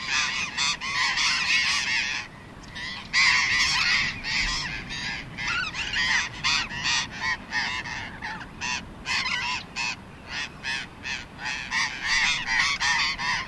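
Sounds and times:
burrowing parakeet flock screeching: 0.0 - 13.4.

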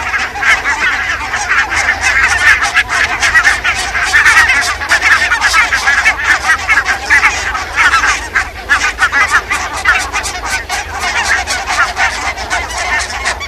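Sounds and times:
Barnacle goose flock honking: 0.0 - 13.4.

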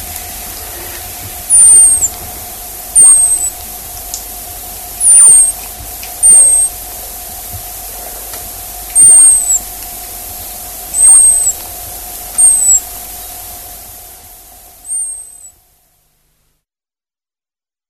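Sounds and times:
background hum: 0.0 - 16.5
hazel dormouse high-pitched thin squeaks: 1.5 - 2.2, 3.0 - 3.6, 5.0 - 5.6, 6.2 - 6.8, 9.0 - 9.7, 11.0 - 11.6, 12.4 - 12.9, 14.9 - 15.5.

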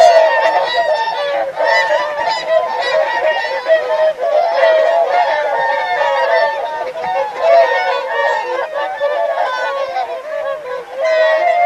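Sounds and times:
Whooper swan flock trumpeting honks in full chorus: 0.0 - 11.6.

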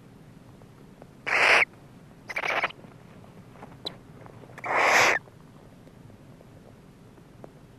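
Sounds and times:
barn owl making harsh hissing screeches: 1.2 - 1.7, 2.3 - 2.8, 4.6 - 5.2.

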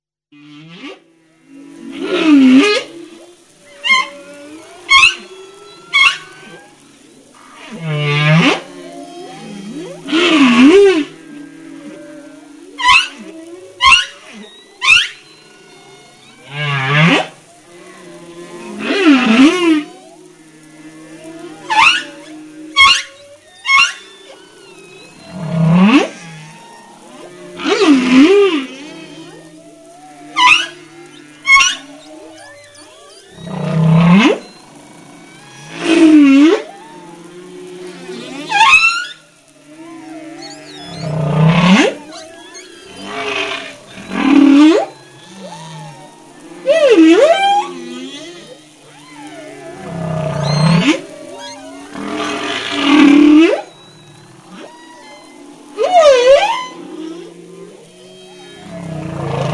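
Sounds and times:
humpback whale: 0.4 - 59.5.

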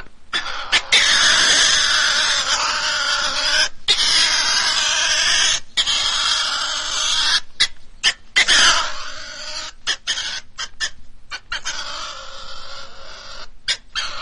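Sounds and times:
European pine marten giving harsh raspy screeching calls: 0.0 - 14.2.

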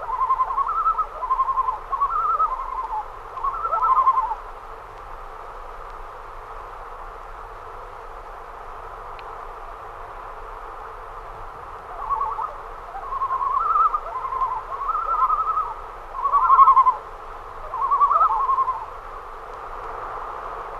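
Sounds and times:
common loon giving tremolo calls: 0.0 - 4.5, 11.7 - 19.5.

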